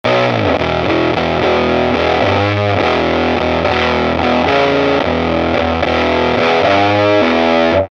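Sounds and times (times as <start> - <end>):
rock guitar through effects pedals: 0.0 - 7.8.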